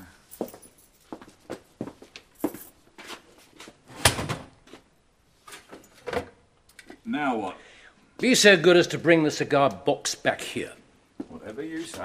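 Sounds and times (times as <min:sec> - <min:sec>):
soft footsteps: 0:00.3 - 0:03.8, 0:11.1 - 0:12.0
speech: 0:07.1 - 0:10.8, 0:11.6 - 0:12.0.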